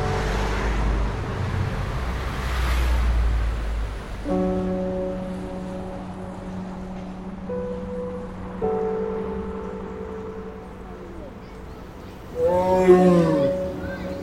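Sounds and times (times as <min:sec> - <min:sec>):
steady low drone: 0:00.0 - 0:14.2
tiger roaring: 0:12.3 - 0:13.8.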